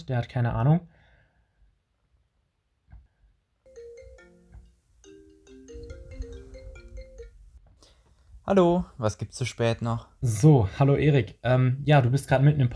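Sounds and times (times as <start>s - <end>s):
speech: 0.0s - 1.0s, 8.5s - 12.7s
telephone ringing during an outgoing call: 3.7s - 7.4s.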